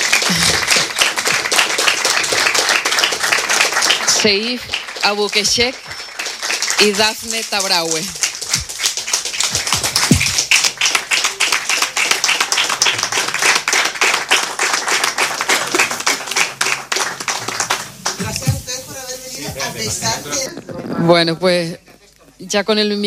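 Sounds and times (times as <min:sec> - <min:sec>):
audience applause in a hall at a live event: 0:00.0 - 0:18.4
speech: 0:04.2 - 0:06.0, 0:06.8 - 0:08.2, 0:19.8 - 0:21.8, 0:22.4 - 0:23.0.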